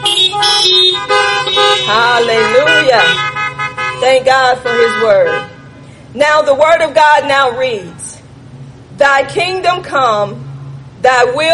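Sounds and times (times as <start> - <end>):
car horn honking: 0.0 - 5.9
speech: 1.9 - 3.4, 4.0 - 5.5, 6.1 - 8.0, 9.0 - 10.4, 11.0 - 11.5.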